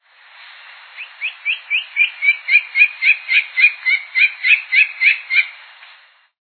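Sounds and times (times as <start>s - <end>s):
freirinha-de-coroa-castanha bird: 1.0s - 5.6s.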